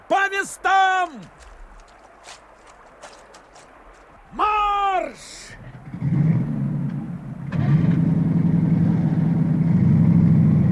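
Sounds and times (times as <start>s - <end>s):
speech: 0.4s - 1.5s, 4.3s - 5.7s
vehicle engine idling and revving as it lurches forward in water and sand: 5.6s - 10.7s.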